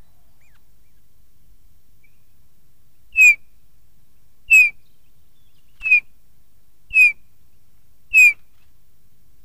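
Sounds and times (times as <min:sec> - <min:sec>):
bullfinch singing: 0:03.1 - 0:03.4, 0:04.5 - 0:04.8, 0:05.7 - 0:06.1, 0:06.9 - 0:07.2, 0:08.1 - 0:08.4.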